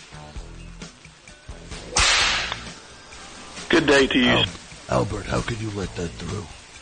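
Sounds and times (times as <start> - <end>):
whip cracking: 2.0 - 2.7
speech: 3.8 - 6.6.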